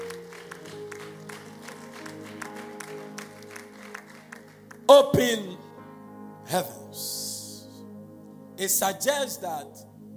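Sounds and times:
audience clapping rhythmically: 0.0 - 5.1
speech: 4.9 - 5.6, 6.5 - 7.1, 8.6 - 9.9.

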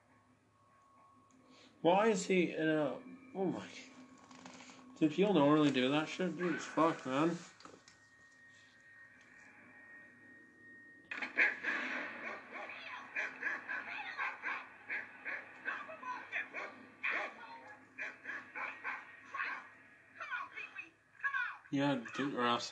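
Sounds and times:
speech: 1.8 - 3.9, 5.0 - 7.5, 22.2 - 22.7
dog barking and yipping: 11.4 - 19.7.

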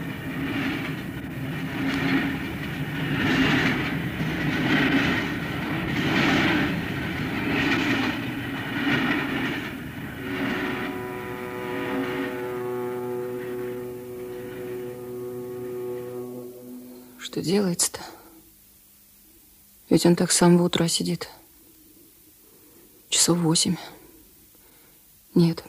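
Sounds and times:
train rushing through a station without stopping: 0.0 - 18.1
speech: 17.3 - 18.2, 19.9 - 21.4, 23.3 - 24.0, 25.4 - 25.6.

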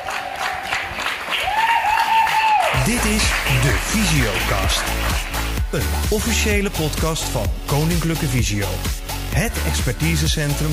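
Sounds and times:
crowd clapping: 0.0 - 6.5
speech: 2.9 - 10.7.

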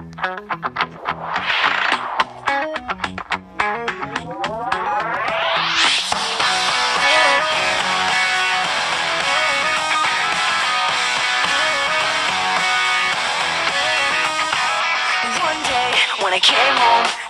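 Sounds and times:
pop rock song with distorted guitars: 0.2 - 17.2
rising sweep: 0.6 - 11.0.

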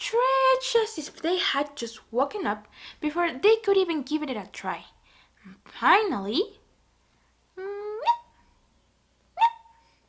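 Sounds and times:
speech: 0.1 - 6.6
kittens squeaky yelps trying to bark like dogs: 9.4 - 9.8.

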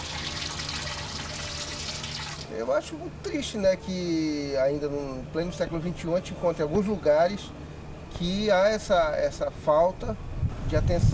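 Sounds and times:
water pouring into a home's reservoir: 0.0 - 2.5
speech: 2.5 - 7.6, 8.2 - 11.1.

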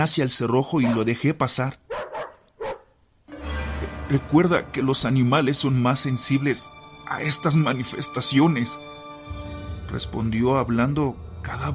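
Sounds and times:
speech: 0.0 - 1.8, 4.1 - 9.0, 9.9 - 11.7
dog barking urgently in sharp yelps: 0.8 - 1.1, 1.9 - 3.0.

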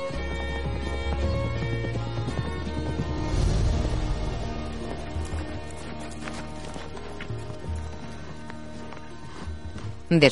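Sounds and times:
horse hoofbeats clip-clopping through a green forest: 0.0 - 10.3
loud dense music: 2.8 - 7.4
speech: 10.1 - 10.3.

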